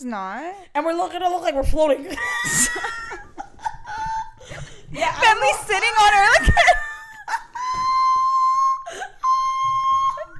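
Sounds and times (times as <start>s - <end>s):
speech: 0.0s - 3.2s, 4.5s - 6.8s
laughter: 2.1s - 8.0s
high-pitched whistle tones: 7.6s - 10.3s.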